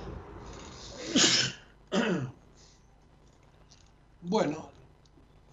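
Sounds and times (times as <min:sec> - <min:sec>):
person sneezing: 0:00.9 - 0:02.4
person coughing: 0:01.0 - 0:02.4
speech: 0:04.3 - 0:04.6.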